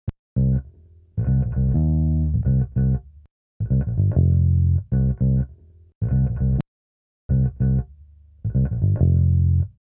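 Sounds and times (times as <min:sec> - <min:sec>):
funky bass: 0:00.4 - 0:06.6, 0:07.3 - 0:09.8.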